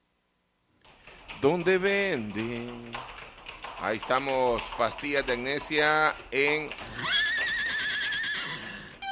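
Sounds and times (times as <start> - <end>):
speech: 1.4 - 3.2, 3.8 - 7.2
horse whinnying: 6.8 - 9.0.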